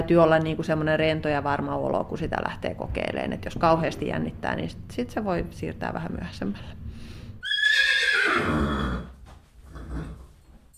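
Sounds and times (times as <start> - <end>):
speech: 0.0 - 7.8
horse neighing in its stall: 7.4 - 10.3.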